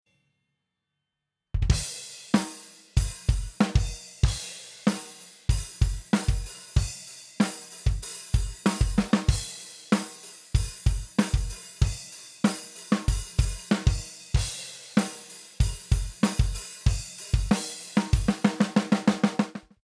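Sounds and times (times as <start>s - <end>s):
drums with effect: 1.6s - 19.7s.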